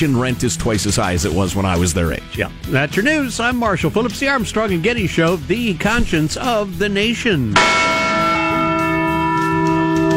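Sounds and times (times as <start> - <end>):
speech: 0.0 - 8.0
large bell ringing: 7.5 - 10.1.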